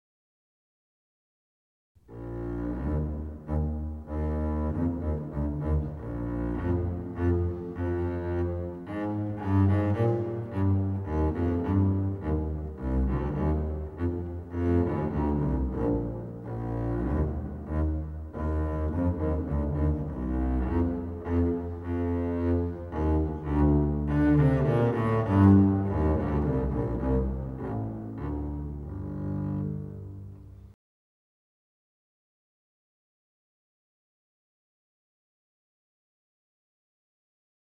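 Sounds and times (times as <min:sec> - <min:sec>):
bowed double bass: 0:02.1 - 0:30.8.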